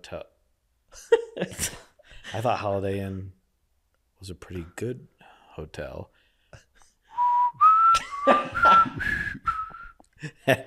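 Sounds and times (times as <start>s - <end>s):
speech: 0.0s - 0.3s, 0.9s - 3.4s, 4.2s - 6.7s, 8.2s - 9.4s, 10.2s - 10.6s
person whistling a wavering tune: 7.1s - 10.0s.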